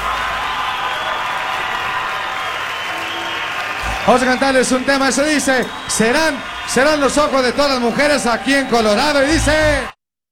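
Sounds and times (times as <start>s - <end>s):
applause from a large audience in Colorado: 0.0s - 9.9s
speech: 4.0s - 9.9s.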